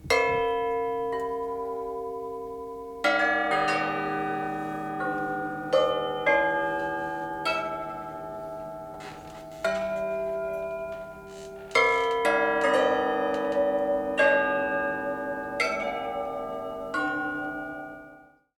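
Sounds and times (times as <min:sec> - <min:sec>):
bells ringing: 0:00.1 - 0:18.4.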